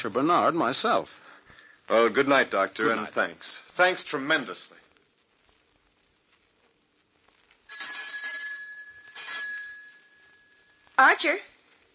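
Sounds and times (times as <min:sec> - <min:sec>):
speech: 0:00.0 - 0:01.3, 0:01.9 - 0:04.8, 0:11.0 - 0:11.5
doorbell ringing: 0:07.7 - 0:10.9.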